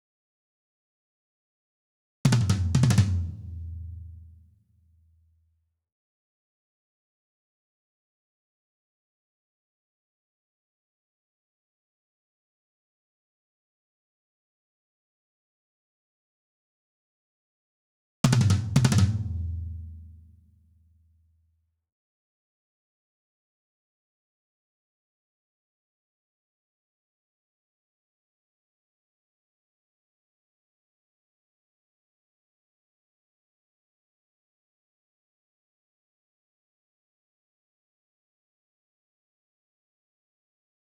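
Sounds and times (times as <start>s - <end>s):
tom drums: 2.3s - 3.5s, 18.3s - 19.5s.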